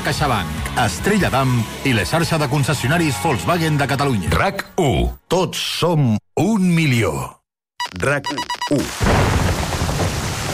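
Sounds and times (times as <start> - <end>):
speech: 0.1 - 9.4
pouring rain in a thunderstorm: 8.8 - 10.5
thunder rumbling: 9.0 - 10.5.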